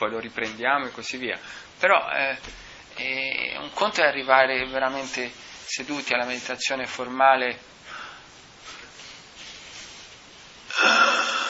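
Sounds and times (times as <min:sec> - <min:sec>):
speech: 0:00.0 - 0:07.8
faint breathy hiss: 0:00.4 - 0:11.4
rough wheezing cough after inhaling incense smoke: 0:10.7 - 0:11.4.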